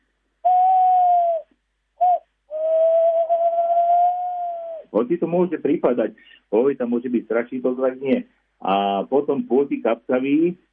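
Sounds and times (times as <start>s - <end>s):
tawny owl hooting: 0.4s - 5.0s
speech: 4.9s - 10.7s.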